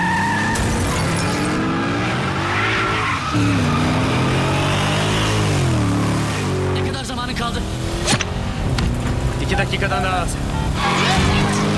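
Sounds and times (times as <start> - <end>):
car tires skidding and squealing: 0.0 - 6.7, 9.8 - 11.7
car engine roaring while accelerating hard: 0.0 - 11.7
speech: 9.7 - 10.4.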